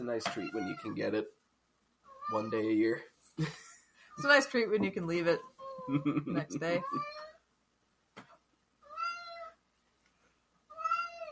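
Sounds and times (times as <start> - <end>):
speech: 0.0 - 1.4, 2.3 - 7.1
chatty house cat meowing: 0.3 - 1.1, 2.0 - 2.8, 6.7 - 7.4, 8.8 - 9.6, 10.7 - 11.3.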